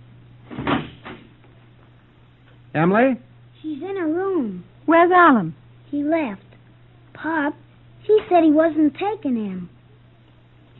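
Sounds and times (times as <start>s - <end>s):
front door closing in a house: 0.5s - 1.4s
speech: 2.8s - 6.4s, 7.2s - 9.8s.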